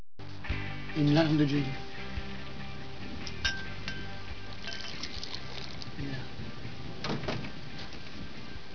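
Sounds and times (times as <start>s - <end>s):
speech: 1.0s - 1.8s
bright glass clinks: 3.4s - 5.7s
tonic water pouring into a glass: 4.5s - 6.0s.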